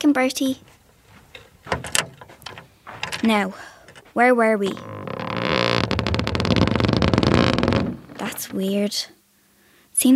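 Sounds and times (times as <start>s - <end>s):
speech: 0.0s - 0.7s, 3.2s - 5.0s, 8.3s - 9.2s
wardrobe door swinging shut: 0.6s - 8.6s.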